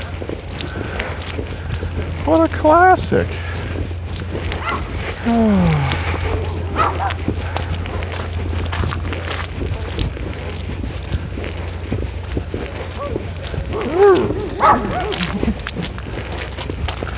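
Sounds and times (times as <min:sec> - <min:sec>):
steady low engine-like hum: 0:00.0 - 0:17.1
speech: 0:02.3 - 0:03.5, 0:05.2 - 0:05.9
excited dog whimpering and barking: 0:13.0 - 0:15.3.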